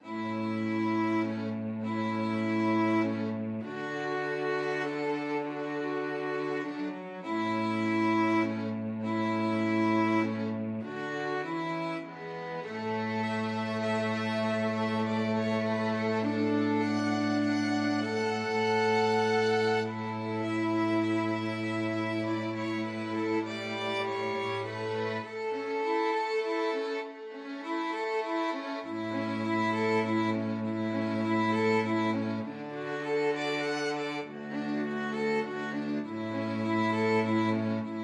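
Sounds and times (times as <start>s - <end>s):
string ensemble playing: 0.0s - 38.0s.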